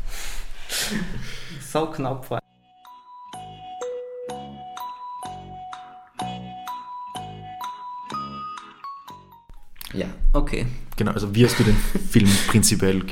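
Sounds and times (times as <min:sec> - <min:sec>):
speech: 0:00.9 - 0:01.1, 0:01.7 - 0:02.4, 0:10.4 - 0:13.1
doorbell chime melody: 0:02.7 - 0:09.5
laughter: 0:11.4 - 0:12.8.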